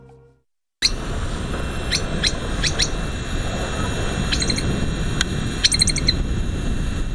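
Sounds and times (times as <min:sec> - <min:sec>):
steady rushing noise: 0:00.8 - 0:07.1
high bird chirps in the open Gobi desert: 0:01.8 - 0:03.0, 0:04.2 - 0:04.7, 0:05.6 - 0:06.2.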